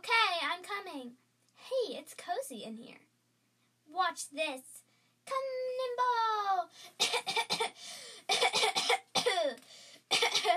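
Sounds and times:
speech: 0.9s - 3.1s, 3.9s - 10.5s
harsh hacking cough from a girl due for a breathing treatment: 7.0s - 10.5s.

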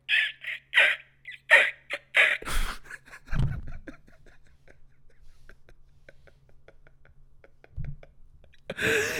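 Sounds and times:
voice imitating harsh dinosaur cries: 0.0s - 2.6s.

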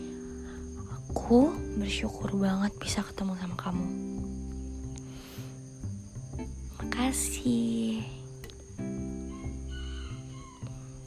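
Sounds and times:
faint insects chirping: 0.0s - 11.0s
speech: 1.2s - 4.2s, 7.0s - 8.2s
rooster crowing: 9.2s - 11.0s.

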